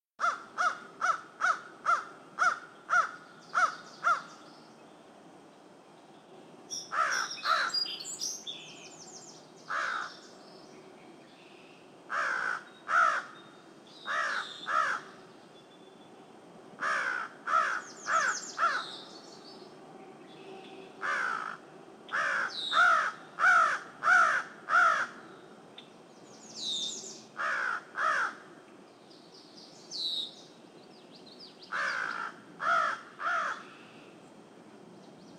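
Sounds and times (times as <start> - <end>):
crow calling: 0.2 - 4.4, 6.8 - 7.9, 9.7 - 10.3, 12.1 - 13.4, 14.0 - 15.2, 16.8 - 19.1, 21.0 - 25.4, 27.4 - 28.5, 31.7 - 34.0.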